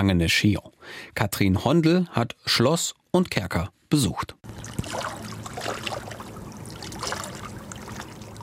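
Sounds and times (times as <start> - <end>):
speech: 0.0 - 5.8
low constant hum: 0.0 - 8.4
water of Lake Geneva lapping against thick castle walls in Switzerland: 4.5 - 8.4.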